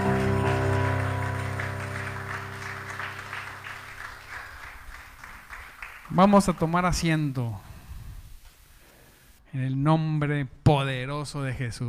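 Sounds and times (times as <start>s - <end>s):
sustained keyboard chord: 0.0s - 4.3s
congregation clapping along in a steady rhythm: 0.0s - 7.1s
speech: 6.2s - 7.6s, 9.5s - 11.8s.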